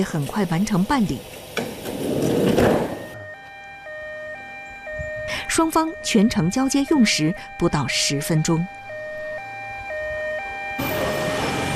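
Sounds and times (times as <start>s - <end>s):
speech: 0.0s - 1.4s, 5.6s - 8.8s
ambulance siren in a stepped two-tone pattern: 2.8s - 11.7s.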